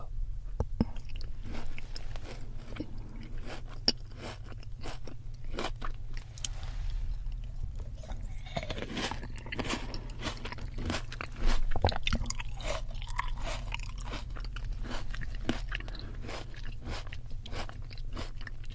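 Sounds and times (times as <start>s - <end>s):
low steady hum: 0.0s - 18.7s
seedless red grapes being bitten and chewed: 0.6s - 18.7s.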